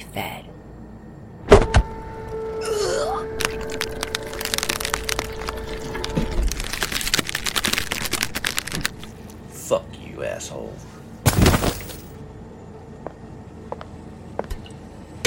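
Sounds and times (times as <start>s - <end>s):
shrill mechanical whine with a warbling sweep: 0.0s - 11.2s, 12.1s - 15.2s
speech: 0.2s - 0.5s
dense crackling and splintering bursts: 3.3s - 9.3s.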